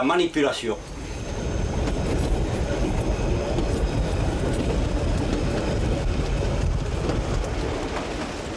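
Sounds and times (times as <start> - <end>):
train running on rails with rattling wheel noise: 0.2 - 8.5.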